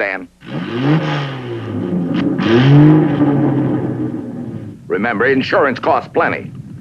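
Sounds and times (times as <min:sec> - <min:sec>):
speech: 0:00.0 - 0:01.4, 0:05.0 - 0:06.6
car engine revving: 0:00.0 - 0:05.4.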